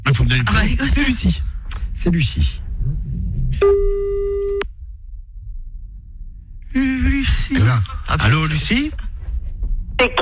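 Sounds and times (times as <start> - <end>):
low rumble: 0.0 - 10.2
speech: 0.1 - 3.9, 7.2 - 9.1, 10.0 - 10.2
steady telephone call tone while phoning a caller: 3.6 - 4.7.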